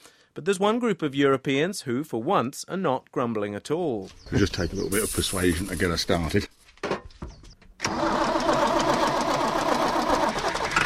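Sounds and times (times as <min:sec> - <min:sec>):
speech: 0:00.4 - 0:06.6
big green tractor engine cranking on a farm near Chatteris: 0:07.6 - 0:10.8.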